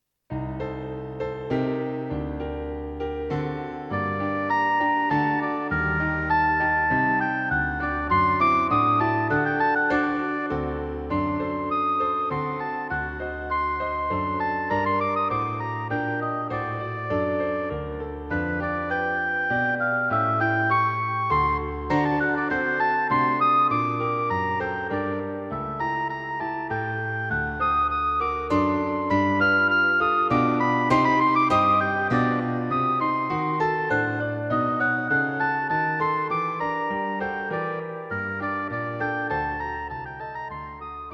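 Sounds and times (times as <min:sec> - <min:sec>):
piano accompaniment: 0:00.3 - 0:41.1
gentle solo oboe melody: 0:01.4 - 0:41.1.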